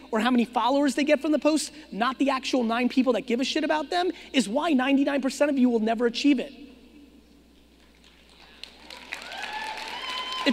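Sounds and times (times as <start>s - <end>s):
speech: 0.1s - 6.7s
room audience applause: 8.1s - 10.5s.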